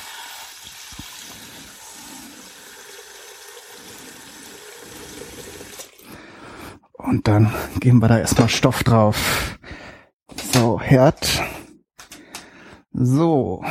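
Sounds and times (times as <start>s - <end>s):
water pouring into a soup pot: 0.0s - 6.1s
speech: 7.1s - 9.6s, 10.9s - 11.5s, 13.0s - 13.6s.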